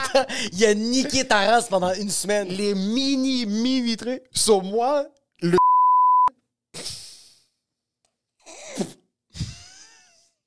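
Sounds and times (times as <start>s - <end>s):
speech: 0.2s - 5.7s
censor bleep pure tone: 5.5s - 6.3s.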